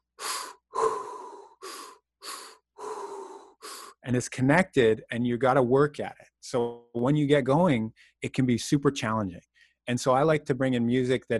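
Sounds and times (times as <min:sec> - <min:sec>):
deep forceful breathing during breath work: 0:00.0 - 0:04.0
speech: 0:04.0 - 0:11.3.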